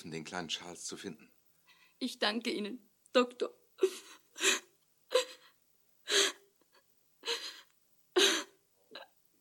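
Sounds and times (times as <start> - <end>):
speech: 0.0 - 1.4, 2.0 - 4.6
woman sobbing with gasping breaths: 3.8 - 8.6.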